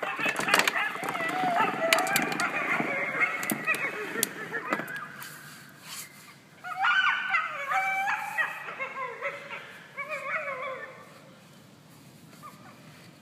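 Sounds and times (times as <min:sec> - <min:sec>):
several coyotes howling and yipping: 0:00.0 - 0:05.6, 0:06.6 - 0:11.5.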